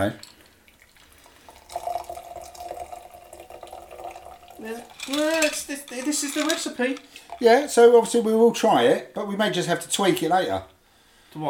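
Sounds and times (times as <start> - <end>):
speech: 0.0 - 0.3, 4.6 - 10.7
lager poured into a cocktail in a tulip glass: 0.0 - 8.2.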